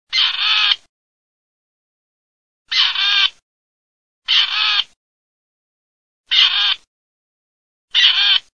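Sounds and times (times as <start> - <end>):
grey partridge Perdix perdix calling: 0.1 - 0.9, 2.7 - 3.4, 4.3 - 5.0, 6.3 - 6.9, 7.9 - 8.5.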